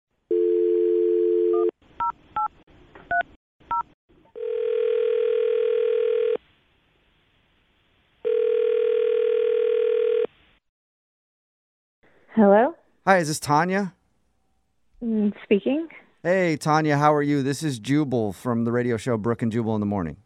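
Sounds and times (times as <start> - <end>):
phone dial tone: 0.3 - 1.7, 4.4 - 6.4, 8.2 - 10.3
speech: 12.4 - 14.0, 15.0 - 20.2.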